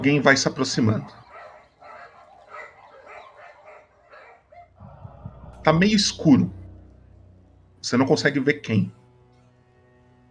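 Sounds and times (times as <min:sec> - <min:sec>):
speech: 0:00.0 - 0:01.2, 0:05.6 - 0:06.6, 0:07.8 - 0:09.0
dogs barking: 0:00.8 - 0:04.8
low rumble: 0:04.8 - 0:08.3.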